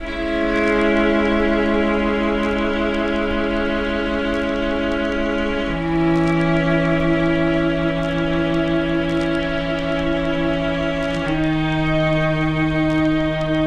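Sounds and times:
sad string loop: 0.0s - 13.6s.

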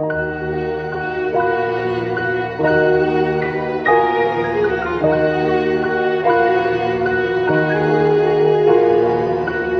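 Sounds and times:
piano in sad loops: 0.0s - 9.7s
strings in sad loops: 0.0s - 9.7s.

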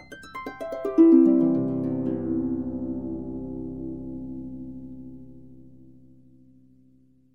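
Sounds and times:
descending harp notes: 0.0s - 5.6s.

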